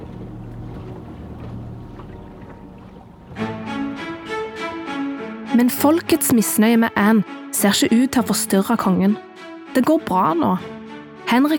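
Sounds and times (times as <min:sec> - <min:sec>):
splashing: 0:00.0 - 0:04.2
river boat gliding across water with low rumble: 0:00.0 - 0:11.5
water lapping: 0:00.0 - 0:11.5
speech: 0:05.6 - 0:11.5.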